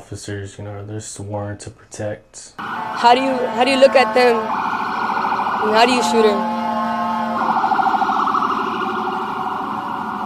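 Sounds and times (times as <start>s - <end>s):
speech: 0.1s - 4.8s, 5.6s - 6.5s
low rumble of traffic: 2.5s - 10.2s
emergency vehicle sirens passing: 2.6s - 10.2s.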